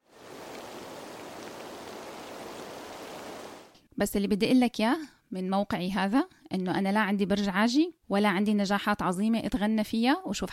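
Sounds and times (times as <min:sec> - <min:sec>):
steady rain falling outdoors: 0:00.0 - 0:03.8
speech: 0:04.0 - 0:10.5.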